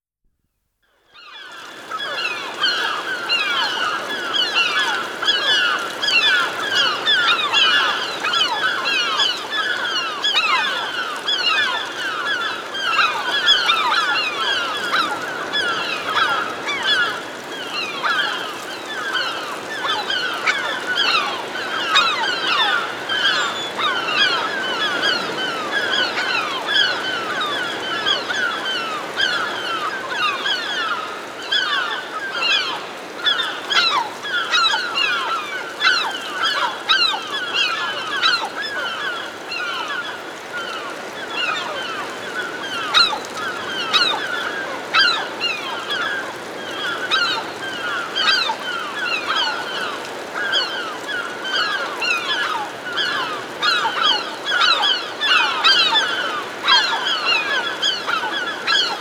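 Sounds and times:
herring gulls hovering overhead: 1.2 - 58.9.

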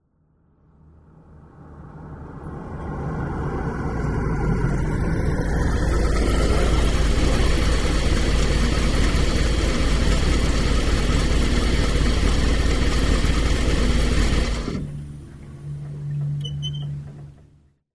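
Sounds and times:
Dodge van driving in and stopping: 0.8 - 17.8.

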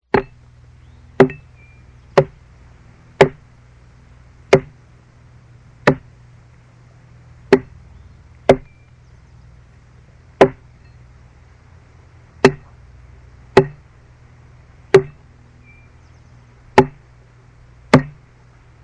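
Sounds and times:
chopping a tree: 0.1 - 0.4, 1.2 - 1.5, 2.1 - 2.4, 3.2 - 3.5, 4.5 - 4.8, 5.8 - 6.1, 7.5 - 7.8, 8.5 - 8.8, 10.4 - 10.7, 12.4 - 12.7, 13.6 - 13.9, 14.9 - 15.2, 16.8 - 17.0, 17.9 - 18.3.

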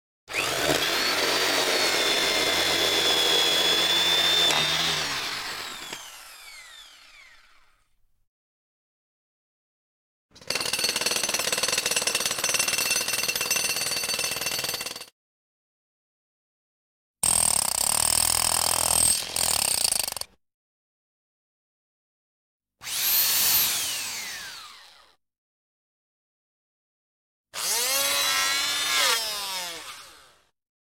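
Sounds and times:
drills: 0.3 - 7.9, 10.4 - 15.0, 17.2 - 20.3, 22.8 - 25.2, 27.6 - 30.5.

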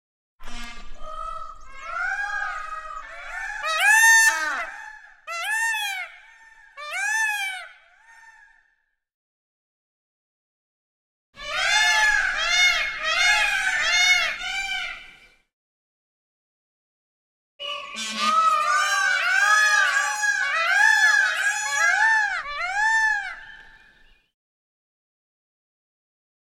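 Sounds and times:
peacocks crying: 0.4 - 8.8, 11.4 - 15.3, 17.6 - 24.2.

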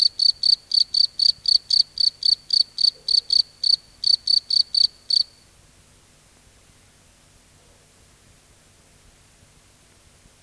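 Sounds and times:
cricket chirping at night in a field: 0.0 - 5.4.

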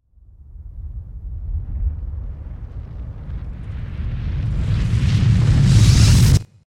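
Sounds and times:
reverse stinger of a big explosion: 1.3 - 6.6.

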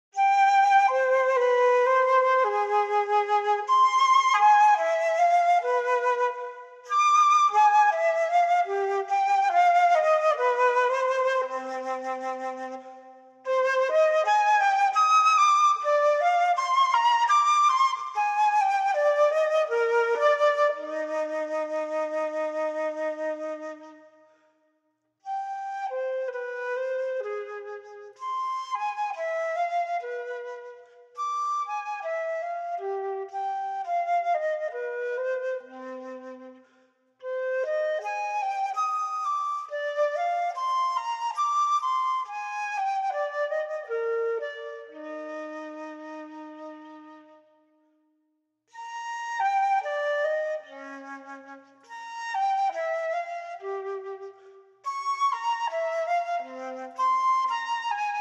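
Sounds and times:
unaccompanied flute playing a baroque sarabande: 0.0 - 58.1.

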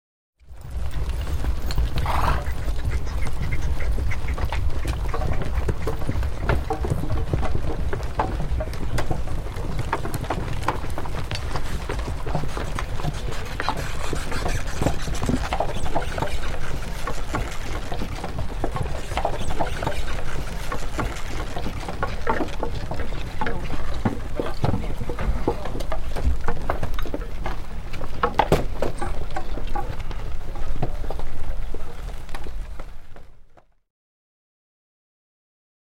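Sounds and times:
infantry moving: 0.5 - 33.2.

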